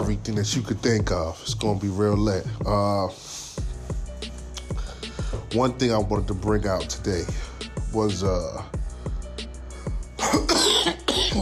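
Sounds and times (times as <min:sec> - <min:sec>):
soft thumping beat: 0:00.0 - 0:02.9, 0:03.6 - 0:09.4
speech: 0:00.1 - 0:03.4, 0:05.5 - 0:08.7
person coughing harshly: 0:10.2 - 0:11.4.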